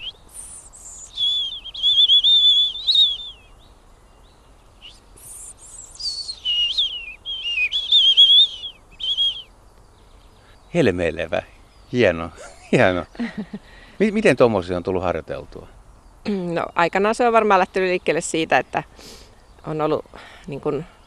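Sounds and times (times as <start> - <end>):
person whistling an imitation of a European robin's song: 0.0 - 3.4, 4.8 - 9.5
speech: 10.8 - 21.0
laughter: 12.4 - 13.7.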